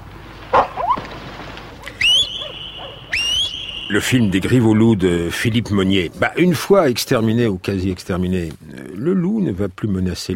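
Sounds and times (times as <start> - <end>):
low rumble: 0.0 - 10.3
hunting dogs yipping and whining after a she-wolf: 0.5 - 1.1, 1.8 - 3.9
hunting dog long steady high-pitched cry: 1.8 - 3.4
speech: 3.9 - 10.3.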